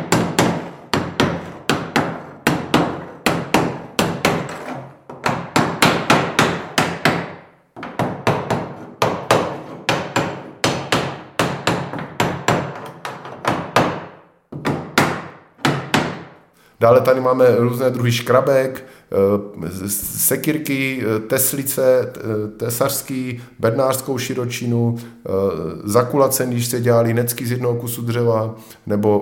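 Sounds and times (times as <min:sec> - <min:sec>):
hammering hoops onto wooden barrel: 0:00.0 - 0:16.3
speech: 0:16.8 - 0:29.2.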